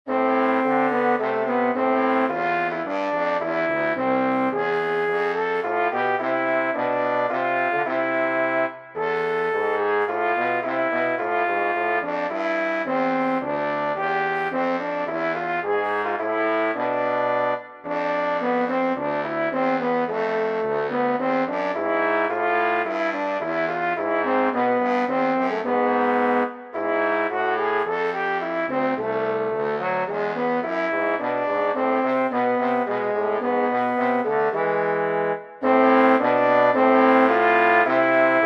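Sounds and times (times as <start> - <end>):
brass trio of two trombones and bass trombone: 0.1 - 38.4.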